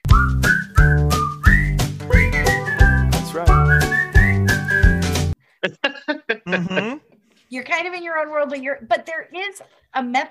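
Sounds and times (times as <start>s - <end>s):
bouncy song with steady beat and bass: 0.0s - 5.4s
whistled melody in a bouncy song: 0.0s - 5.4s
laughter: 5.6s - 7.0s
speech: 7.6s - 10.2s.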